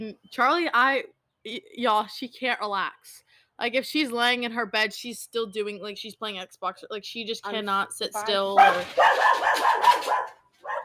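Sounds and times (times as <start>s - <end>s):
speech: 0.0s - 10.8s
dogs barking at a visitor: 8.6s - 10.8s.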